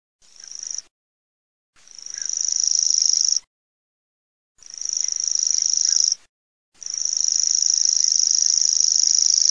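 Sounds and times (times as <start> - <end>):
Forapaglie macchiettato grasshopper warbler: 0.2 - 0.9, 1.8 - 3.5, 4.6 - 9.5.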